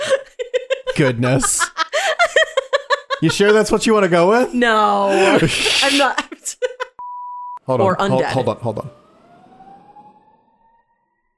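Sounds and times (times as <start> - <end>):
laughter: 0.0 - 4.0, 5.1 - 7.0
speech: 1.0 - 1.7, 3.2 - 6.3, 7.7 - 9.0
emergency siren wailing as it passes: 7.6 - 11.3
low rumble of traffic: 7.8 - 10.7.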